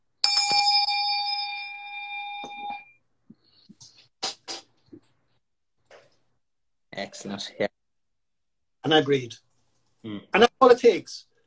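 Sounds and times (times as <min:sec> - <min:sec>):
small hand bell ringing: 0:00.2 - 0:02.9
speech: 0:07.0 - 0:07.7, 0:08.9 - 0:11.3.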